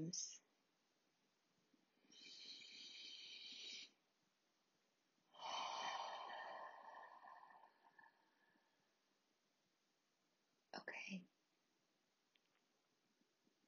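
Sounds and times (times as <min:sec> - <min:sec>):
speech: 0:00.0 - 0:00.4
slow deep breaths during a breathing exercise: 0:02.0 - 0:04.0, 0:05.3 - 0:08.9.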